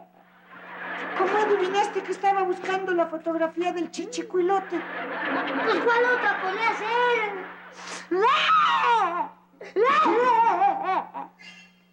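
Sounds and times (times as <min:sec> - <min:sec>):
faint steady hum: 0:00.0 - 0:11.9
laughter: 0:00.5 - 0:02.9, 0:04.3 - 0:08.3, 0:09.8 - 0:11.4
speech: 0:01.2 - 0:11.9
young child crying in high-pitched wails: 0:08.1 - 0:11.3.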